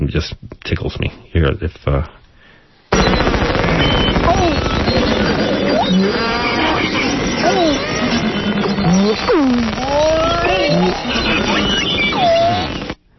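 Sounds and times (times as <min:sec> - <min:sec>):
speech: 0:00.1 - 0:02.2
beluga whale buzzy pulses underwater: 0:02.9 - 0:13.0
beluga whale crackling clicks underwater: 0:02.9 - 0:13.0
beluga whale whistles underwater: 0:04.5 - 0:13.0.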